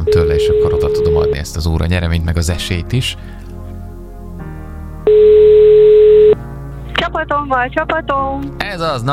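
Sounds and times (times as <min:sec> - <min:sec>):
telephone ringing tone over a phone line: 0:00.0 - 0:01.4, 0:05.1 - 0:06.4
speech: 0:00.4 - 0:03.4, 0:07.3 - 0:09.1.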